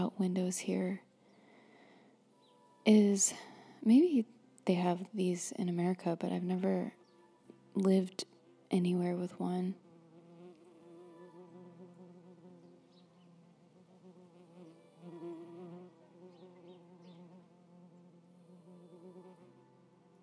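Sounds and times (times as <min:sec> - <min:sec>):
speech: 0:00.0 - 0:01.1, 0:02.8 - 0:07.0, 0:07.8 - 0:09.8
bee buzzing: 0:08.8 - 0:20.2.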